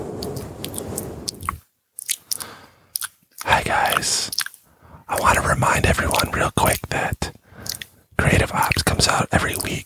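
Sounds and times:
lip smacking: 0.2 - 4.6, 7.6 - 7.9
wet ASMR mouth noises: 0.2 - 7.9
speech: 3.6 - 4.4, 8.5 - 9.8.

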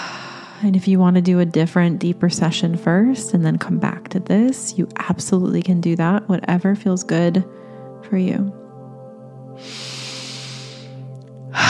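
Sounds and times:
long airy breath: 0.0 - 0.6, 7.5 - 8.0, 9.6 - 11.6
speech: 0.6 - 8.6, 9.6 - 10.0
low sustained drone: 7.0 - 11.6.

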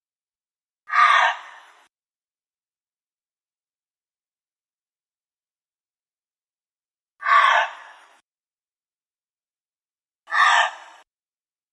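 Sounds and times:
gray fox harsh raspy screeches: 0.9 - 1.8, 7.2 - 8.2, 10.3 - 11.0.

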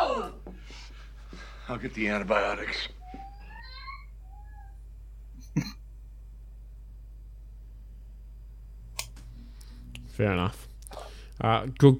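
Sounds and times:
speech: 1.7 - 3.0, 5.6 - 5.8, 10.2 - 11.9
cat giving a short quiet meow: 3.0 - 4.8.

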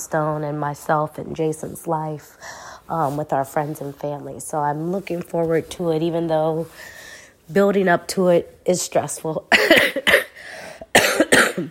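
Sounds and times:
speech: 0.0 - 10.2
harsh coughs: 9.5 - 11.6.

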